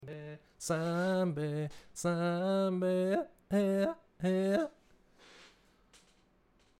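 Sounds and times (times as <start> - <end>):
man yodeling: 0.0 - 4.8.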